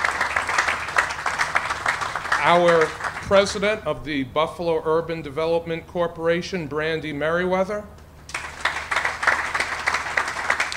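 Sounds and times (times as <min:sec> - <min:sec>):
audience at a civic event applauding: 0:00.0 - 0:03.8, 0:08.3 - 0:10.7
speech: 0:02.4 - 0:08.0.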